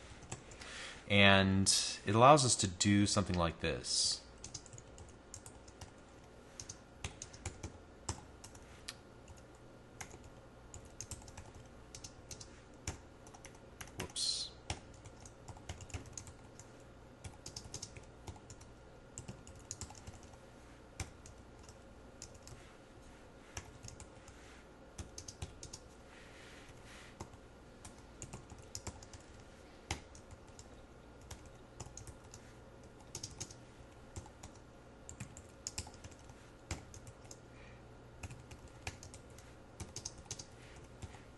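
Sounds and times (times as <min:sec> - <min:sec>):
speech: 0:01.1 - 0:04.2
typing on a computer keyboard: 0:04.4 - 0:08.6, 0:09.3 - 0:20.4, 0:21.0 - 0:22.6, 0:23.6 - 0:24.2, 0:25.0 - 0:25.8, 0:27.2 - 0:37.4, 0:38.2 - 0:41.3.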